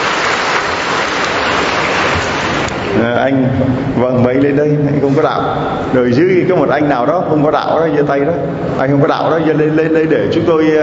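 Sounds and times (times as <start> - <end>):
crowd applause: 0.0 - 2.9
speech: 3.1 - 10.8.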